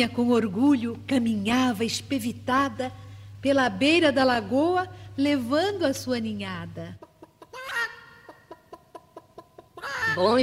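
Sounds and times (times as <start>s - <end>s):
speech: 0.0s - 7.1s, 10.1s - 10.4s
chickens clucking in a poultry yard: 7.0s - 10.4s.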